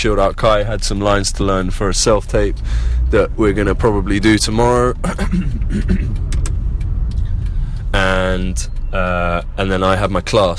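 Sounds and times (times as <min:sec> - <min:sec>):
speech: 0:00.0 - 0:06.4, 0:07.9 - 0:10.5
low road rumble in a car cabin while driving: 0:00.0 - 0:10.5
light clicks and taps: 0:00.4 - 0:03.0, 0:05.7 - 0:09.2.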